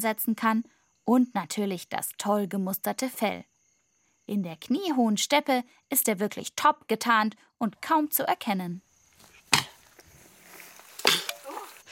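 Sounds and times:
speech: 0.0s - 3.5s, 4.3s - 8.9s
cheetah hissing: 9.8s - 11.9s.

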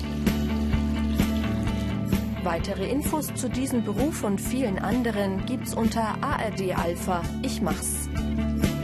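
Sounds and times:
water gushing into a fertilizer mixing container: 0.0s - 2.8s
speech: 2.5s - 8.7s.

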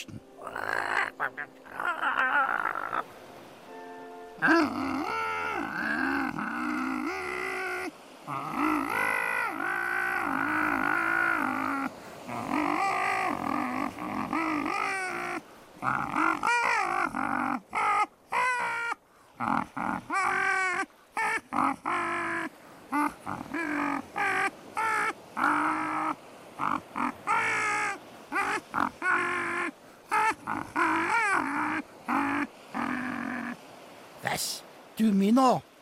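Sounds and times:
parrot making throaty grunts and croaking caw-like calls: 0.0s - 3.1s, 4.4s - 33.6s
speech: 1.2s - 2.4s.

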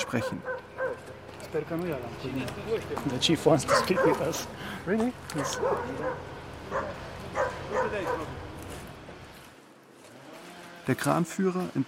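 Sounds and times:
several dogs barking: 0.0s - 1.2s, 3.5s - 4.5s, 5.3s - 8.4s
speech: 0.1s - 0.5s, 1.5s - 7.0s, 7.7s - 8.4s, 10.9s - 11.8s.

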